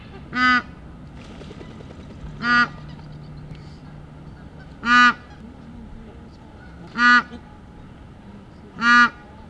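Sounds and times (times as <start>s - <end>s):
Anser indicus bar-headed goose calling loudly: 0.3s - 0.7s, 2.4s - 3.1s, 4.4s - 5.4s, 6.6s - 7.3s, 8.8s - 9.2s.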